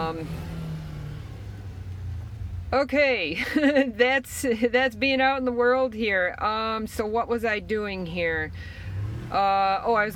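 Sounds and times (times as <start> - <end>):
motorcycle revving outside: 0.0 - 2.7, 7.8 - 10.1
speech: 0.1 - 0.6, 2.7 - 10.1.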